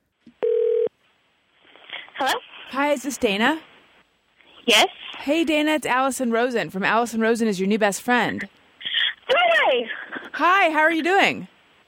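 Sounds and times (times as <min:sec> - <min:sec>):
telephone dialing tone beep: 0:00.4 - 0:00.9
speech: 0:02.2 - 0:03.7, 0:04.7 - 0:08.6, 0:09.8 - 0:11.5.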